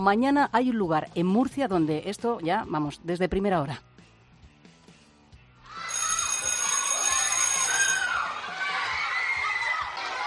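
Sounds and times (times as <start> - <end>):
speech: 0.0 - 3.9
crowd of children chattering and shouting: 5.7 - 10.2
school bell ringing: 5.9 - 8.4.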